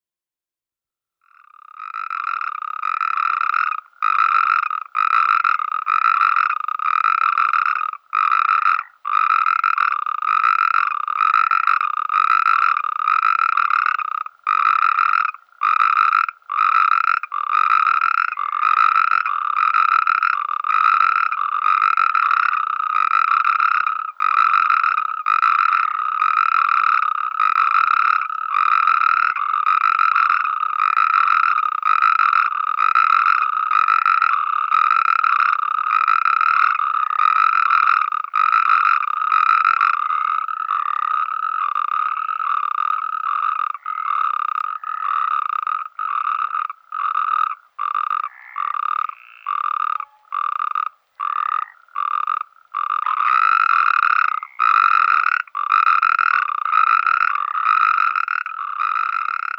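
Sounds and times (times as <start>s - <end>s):
Bufo calamita calling: 1.3s - 59.5s.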